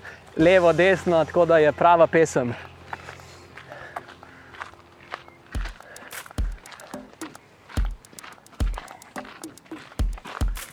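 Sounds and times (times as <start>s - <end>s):
speech: 0.4s - 2.7s
footsteps walking briskly along paths in a city park: 2.4s - 10.7s.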